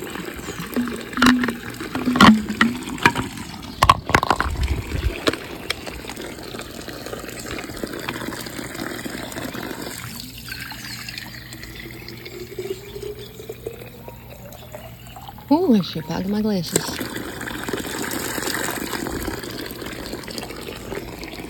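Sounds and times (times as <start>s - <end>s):
hot spring water gushing into a container: 0.0s - 21.4s
clinks and knocks: 0.5s - 4.5s
speech: 15.5s - 17.1s.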